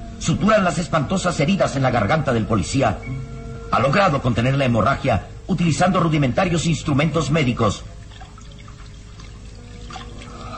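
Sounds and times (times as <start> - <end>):
speech: 0.2 - 7.9
water pouring and trickling: 7.9 - 10.5.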